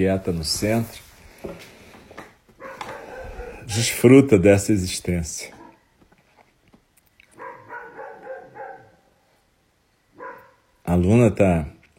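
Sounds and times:
speech: 0:00.0 - 0:01.7, 0:03.7 - 0:05.6, 0:11.0 - 0:11.8
dog barking in loud yelps: 0:02.6 - 0:03.8, 0:05.6 - 0:05.9, 0:07.3 - 0:09.2, 0:10.1 - 0:10.8.

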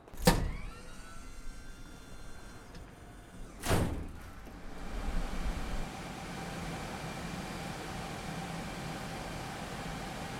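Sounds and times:
heavy server room door unlatching with a sharp clunk: 0:00.0 - 0:05.0
server room hard drives spinning and machine fans roaring: 0:00.0 - 0:10.3.

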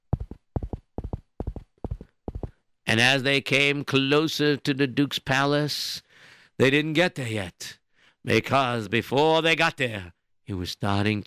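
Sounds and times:
horse hooves galloping: 0:00.0 - 0:02.6
speech: 0:02.9 - 0:06.0, 0:06.6 - 0:11.2.

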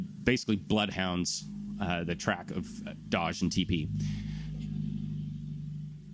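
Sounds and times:
throaty engine rumble from a car with no muffler: 0:00.0 - 0:06.1
speech: 0:00.2 - 0:04.3.

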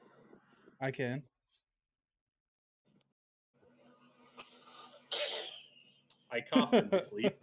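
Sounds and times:
speech: 0:00.8 - 0:01.3, 0:06.3 - 0:07.4
cough: 0:04.4 - 0:05.8.

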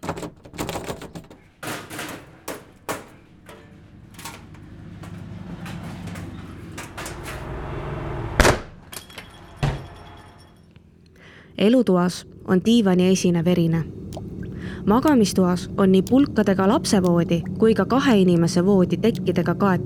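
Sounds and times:
door forced open, lock cylinder smashed: 0:00.0 - 0:07.5
speech: 0:11.6 - 0:14.0, 0:14.8 - 0:19.8.

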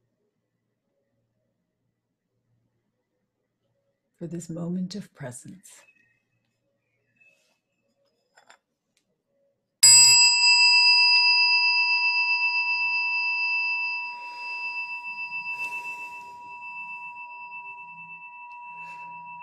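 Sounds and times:
speech: 0:04.2 - 0:05.9
meditation chime ringing: 0:09.8 - 0:19.4.

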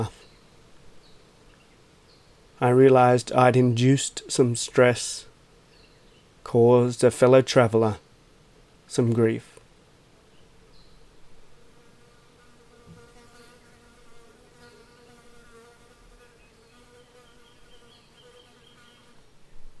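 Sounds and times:
speech: 0:02.6 - 0:05.3, 0:06.4 - 0:08.0, 0:08.9 - 0:09.5
mud dauber wasp buzzing: 0:11.4 - 0:19.2.

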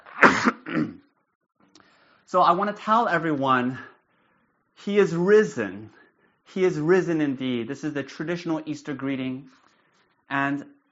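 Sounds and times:
person coughing: 0:00.0 - 0:01.0
speech: 0:02.3 - 0:03.9, 0:04.8 - 0:09.6, 0:10.3 - 0:10.9.

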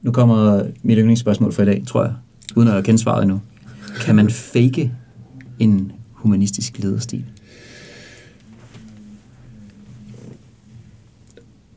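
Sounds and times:
speech: 0:00.0 - 0:05.0, 0:05.6 - 0:07.4
faint low rumbling: 0:00.0 - 0:11.7
deep airy inhale: 0:03.6 - 0:04.1, 0:07.4 - 0:10.4
soft exhale: 0:07.4 - 0:10.4.

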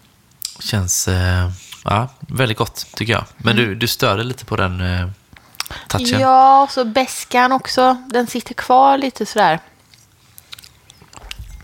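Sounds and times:
speech: 0:00.7 - 0:05.2, 0:05.9 - 0:09.7
wet lip smacking while tasting: 0:01.6 - 0:01.9, 0:05.4 - 0:06.2.

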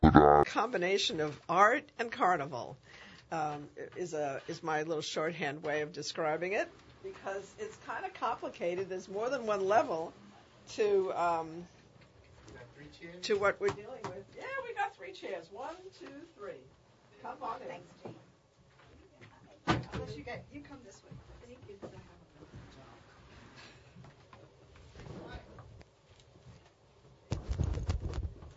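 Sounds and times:
studio microphone being shaken and handled: 0:00.0 - 0:00.5
speech: 0:00.2 - 0:11.8, 0:12.9 - 0:18.2, 0:19.7 - 0:21.2.

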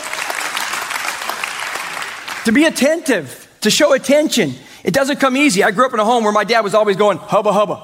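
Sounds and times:
audience applauding: 0:00.0 - 0:02.7
speech: 0:02.4 - 0:07.8.

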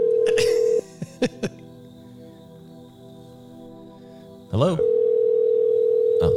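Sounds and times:
telephone ringback tone of unanswered call: 0:00.0 - 0:00.4, 0:04.8 - 0:06.3
speech: 0:00.3 - 0:00.6, 0:04.6 - 0:04.9
laughter: 0:00.3 - 0:01.7.

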